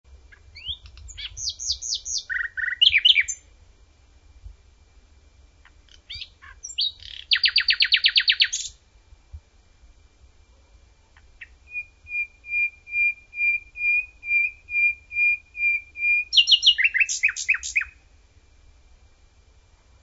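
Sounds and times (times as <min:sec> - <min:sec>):
nightingale: 0:00.2 - 0:03.6, 0:05.6 - 0:08.9, 0:10.5 - 0:18.1.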